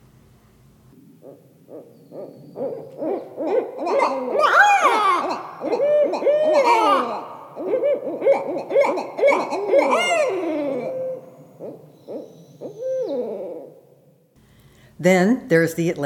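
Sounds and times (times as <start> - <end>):
speech: 1.2 - 4.6, 15.0 - 16.0
two barred owls caterwauling in a duet: 1.2 - 13.8.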